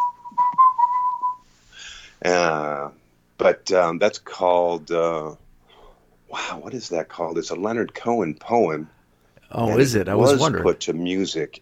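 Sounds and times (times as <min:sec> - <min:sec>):
person whistling a short wavering melody: 0:00.0 - 0:01.4
speech: 0:02.2 - 0:05.4, 0:06.3 - 0:11.6.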